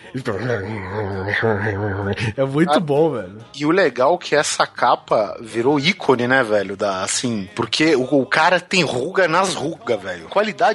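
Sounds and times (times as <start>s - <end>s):
speech: 0.1s - 10.7s
person's voice imitating a low gravelly growl: 0.5s - 2.2s.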